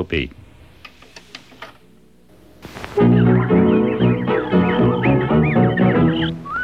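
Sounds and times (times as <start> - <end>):
speech: 0.0 - 0.4
chirping whistle-like bird imitations: 3.0 - 6.6
old dance band record playing a tune: 3.0 - 6.6.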